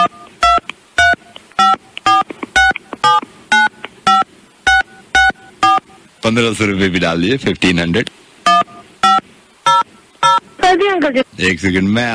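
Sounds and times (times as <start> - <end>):
mobile phone keypad tones entering credit card digits: 0.0 - 6.0, 8.5 - 10.7
speech: 6.3 - 8.2, 11.0 - 12.1.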